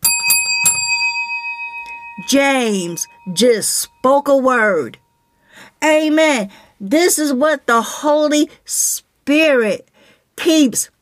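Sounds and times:
hand bell ringing: 0.0 - 4.7
speech: 2.2 - 5.0, 5.8 - 10.9.

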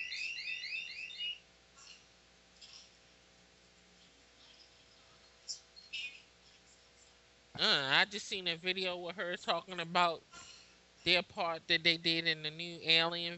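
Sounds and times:
alarm clock ringing with high shrill electronic chirps: 0.0 - 1.4
speech: 7.6 - 10.4, 11.0 - 13.3.

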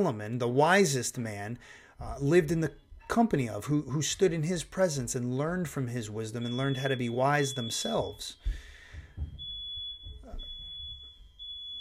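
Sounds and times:
speech: 0.0 - 8.6
smoke detector alarm beeping in a house: 2.3 - 11.7.

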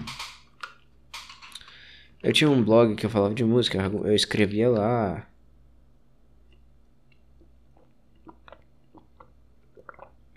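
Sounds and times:
low hum: 0.0 - 10.3
speech: 2.2 - 5.3
someone gulping water: 7.3 - 10.3.

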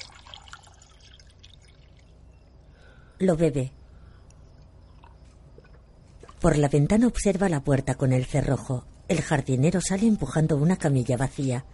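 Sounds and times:
water poured into a glass in a bedroom at night: 0.0 - 2.2
low hiss: 0.0 - 11.7
speech: 3.2 - 3.8, 6.4 - 11.7.

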